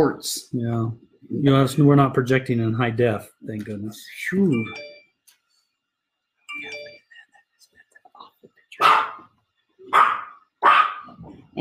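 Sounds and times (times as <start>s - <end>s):
speech: 0.0s - 4.9s
doorbell chime: 4.5s - 5.2s, 6.5s - 7.1s
dog barking: 8.8s - 9.3s, 9.9s - 11.2s.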